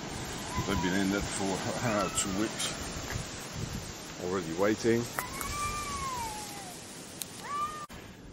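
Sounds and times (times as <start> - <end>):
steady hiss: 0.0 - 8.3
speech: 0.6 - 2.9, 4.2 - 5.3
cat meowing at feeding time in Italy: 1.7 - 2.8, 5.2 - 6.8, 7.4 - 7.9.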